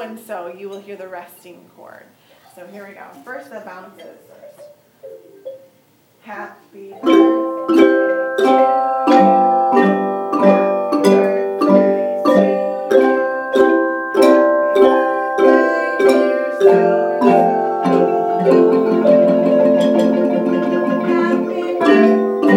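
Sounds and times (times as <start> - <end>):
xylophones playing a birthday song: 4.5 - 5.8, 7.0 - 22.5.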